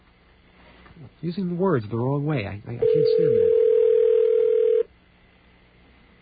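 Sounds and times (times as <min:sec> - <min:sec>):
speech: 0:01.2 - 0:03.7
electronic telephone ring tone over a phone line: 0:02.8 - 0:04.9.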